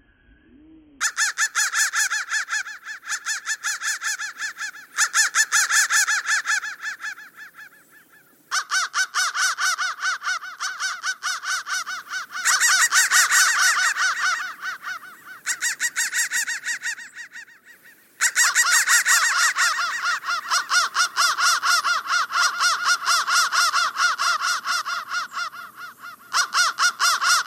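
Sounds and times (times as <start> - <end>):
digitally processed crow calls in buzzy repeating pulses: 1.0 - 27.4.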